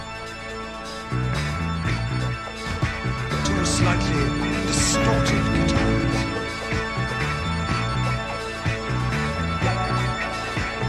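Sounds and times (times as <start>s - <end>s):
sustained musical backdrop with deep low notes: 0.2s - 10.8s
tubular bells ringing: 3.4s - 8.6s
speech: 3.8s - 6.0s.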